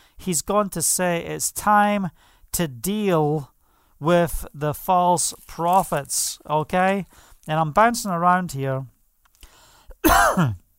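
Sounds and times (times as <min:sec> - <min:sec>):
speech: 0:00.2 - 0:08.9, 0:10.4 - 0:10.6
cough: 0:10.0 - 0:10.6
throat clearing: 0:10.0 - 0:10.6.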